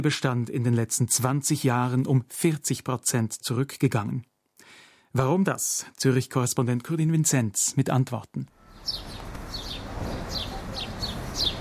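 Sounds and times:
speech: 0.0 - 4.3, 5.1 - 9.1
house sparrows chirping in hedges: 8.6 - 11.5.

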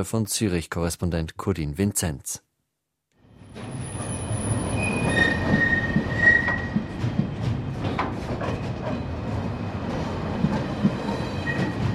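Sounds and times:
speech: 0.0 - 2.5
freight wagon wheels rumbling on rails in a shunting yard: 3.3 - 11.9
freight wagon wheels squealing: 3.6 - 7.0.

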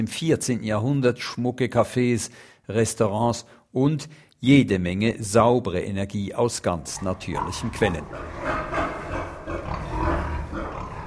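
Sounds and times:
speech: 0.0 - 8.6
crowd of pigs grunting and snorting: 6.8 - 11.0.

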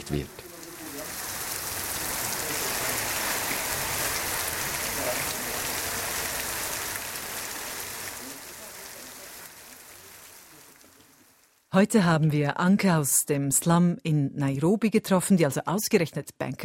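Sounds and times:
heavy rain pouring: 0.0 - 11.7
speech: 0.1 - 0.5, 11.8 - 16.6.

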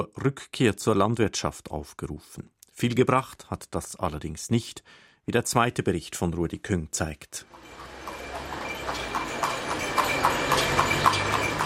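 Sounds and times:
speech: 0.0 - 7.9
outdoor noise in a small country town in Senegal: 7.4 - 11.6
donkey hooves clip-clopping pulling a cart in a country town in Senegal: 7.5 - 11.6
rumble of cart wheels: 7.6 - 11.6.

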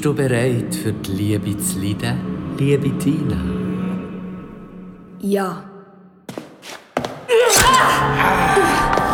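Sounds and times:
speech: 0.0 - 3.6, 5.2 - 5.7, 7.7 - 9.0
butcher knife chopping thuds: 7.5 - 7.9.

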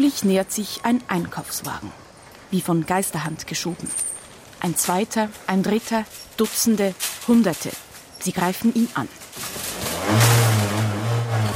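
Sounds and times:
speech: 0.0 - 9.5
moped engine starting and riding off: 9.6 - 11.5.

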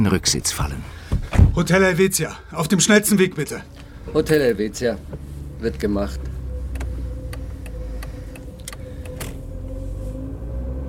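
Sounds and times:
speech: 0.0 - 1.0, 1.6 - 6.3
car engine rumble driving along a street heard from inside: 0.0 - 10.8
regular ticking clicks like an indicator: 6.2 - 9.4.

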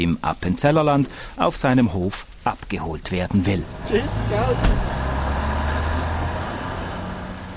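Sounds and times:
speech: 0.0 - 5.0
on-demand bus engine rumbling as it pulls away: 2.5 - 7.5.

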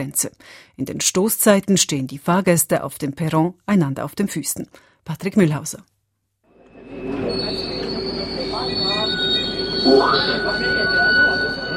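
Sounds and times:
speech: 0.0 - 5.9, 9.8 - 11.2
high-pitched metro train wheel squeal: 6.7 - 11.7.

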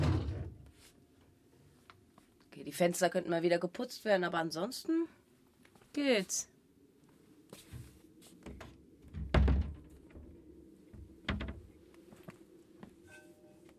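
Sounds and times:
speech: 2.6 - 5.2, 6.0 - 6.5
heavy door pushed shut with a heavy thud: 8.5 - 10.3, 11.0 - 11.7.

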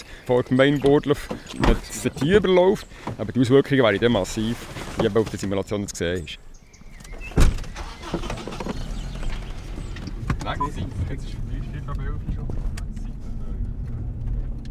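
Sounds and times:
car driving through residential and industrial areas: 0.0 - 14.6
speech: 0.3 - 6.5, 8.1 - 8.5, 10.4 - 12.6.

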